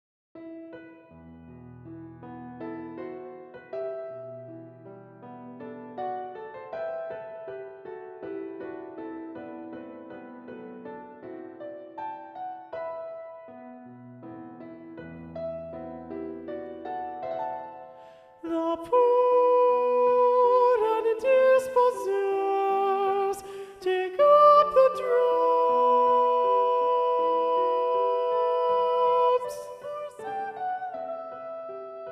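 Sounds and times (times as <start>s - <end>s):
alto voice singing in SATB choir: 18.4s - 32.1s.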